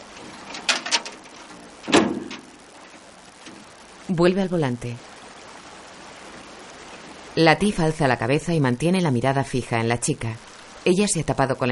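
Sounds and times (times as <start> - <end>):
pickup truck door shut by the driver: 1.9 - 2.5
speech: 4.1 - 5.1, 7.4 - 11.7.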